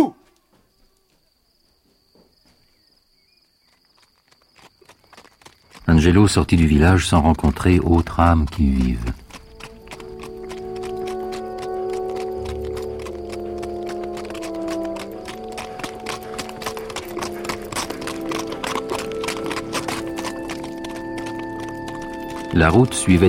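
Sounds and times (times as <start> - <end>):
horse trotting on a hard road: 0.2 - 23.2
speech: 5.9 - 9.2, 22.6 - 23.2.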